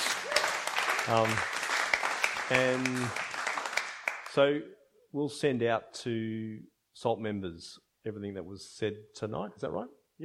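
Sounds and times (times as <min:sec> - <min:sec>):
attendees at an annual general meeting applauding: 0:00.0 - 0:04.4
speech: 0:01.0 - 0:01.6, 0:02.5 - 0:03.2, 0:04.4 - 0:10.2.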